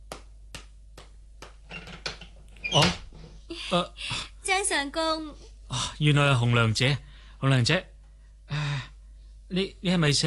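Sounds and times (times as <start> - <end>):
door creaking open: 1.7 - 3.4
speech: 2.7 - 3.0, 3.7 - 5.4, 6.0 - 7.9, 9.5 - 10.2.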